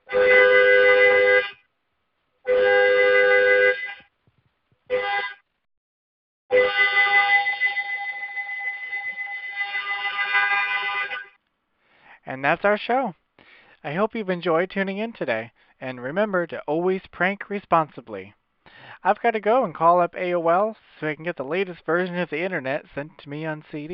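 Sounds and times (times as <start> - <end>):
car horn honking in long and short blasts: 0.0 - 1.7, 2.4 - 4.1, 4.9 - 5.5, 6.5 - 11.4
speech: 12.5 - 13.2, 13.8 - 18.4, 19.0 - 23.9.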